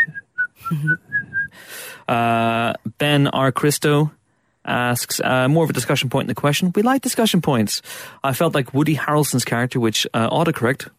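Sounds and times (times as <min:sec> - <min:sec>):
woman whistling a tune: 0:00.0 - 0:01.6
speech: 0:00.7 - 0:10.9.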